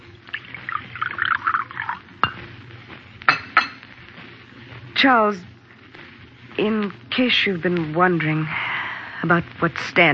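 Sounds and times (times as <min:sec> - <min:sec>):
quiet room hum: 0:00.0 - 0:10.1
coffee pouring into a cup: 0:00.1 - 0:02.4
china and cutlery clinking: 0:03.3 - 0:03.9
speech: 0:05.0 - 0:05.5, 0:06.6 - 0:10.1.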